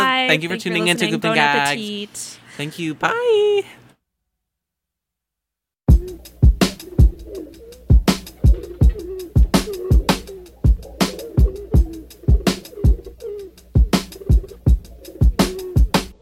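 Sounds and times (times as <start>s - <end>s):
speech: 0.3s - 3.8s
pigeons cooing: 5.9s - 16.2s.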